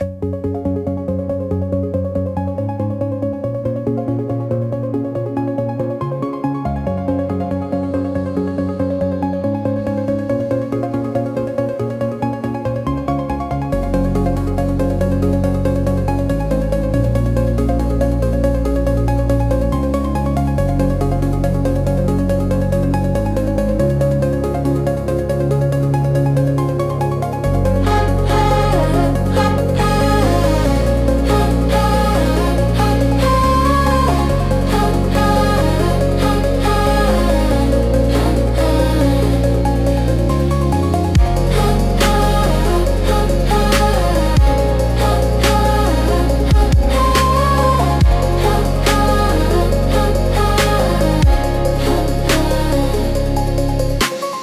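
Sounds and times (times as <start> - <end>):
uplifting ambient music for study: 0.0 - 54.4.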